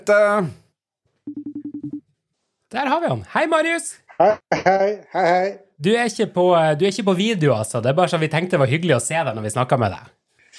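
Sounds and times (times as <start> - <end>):
speech: 0.0 - 0.6, 2.7 - 10.2
telephone call tones as someone is rung up: 1.3 - 2.0.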